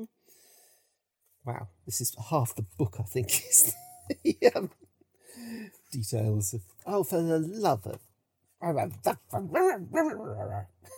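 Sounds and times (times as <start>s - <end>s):
speech: 1.4s - 4.8s, 5.4s - 10.9s
person imitating a dog with barks and yips: 9.4s - 10.9s.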